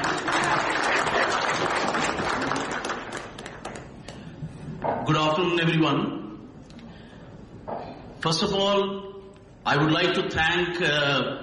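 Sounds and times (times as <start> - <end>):
audience applauding to welcome a speaker to a session: 0.0 - 4.1
speech: 5.1 - 6.2, 8.2 - 11.4.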